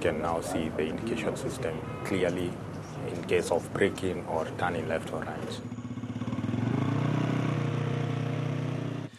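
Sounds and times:
speech: 0:00.0 - 0:05.8
light motorcycle engine riding laps: 0:03.8 - 0:09.1.

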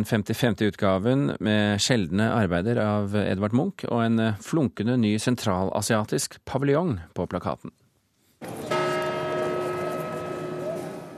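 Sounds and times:
speech: 0:00.0 - 0:07.8
large church bell striking: 0:08.4 - 0:11.1
crowd murmur in a busy open square: 0:09.4 - 0:11.1.

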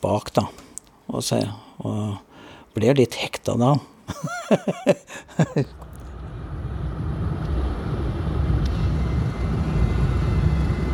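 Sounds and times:
speech: 0:00.0 - 0:05.9
laughter: 0:04.1 - 0:05.8
airplane engine drone heard from inside the aircraft in flight over Norway: 0:05.3 - 0:10.9.

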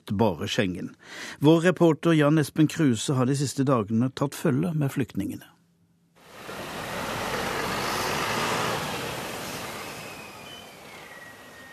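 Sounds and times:
speech: 0:00.1 - 0:05.5
faint high whine: 0:06.2 - 0:11.7
large bus rumbling past at a bus station in Subotica: 0:06.2 - 0:11.7.

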